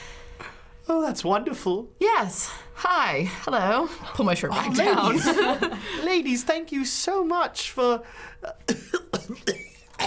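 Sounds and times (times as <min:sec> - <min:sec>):
speech: 0:00.9 - 0:09.6
laughter: 0:04.7 - 0:06.0
person coughing: 0:08.5 - 0:10.0.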